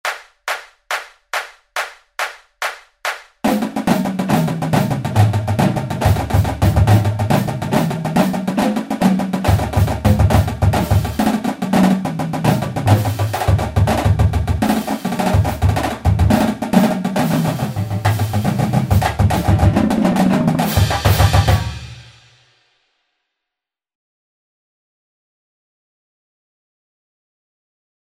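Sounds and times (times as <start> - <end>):
drum flams at 140 BPM: 3.5 - 22.4.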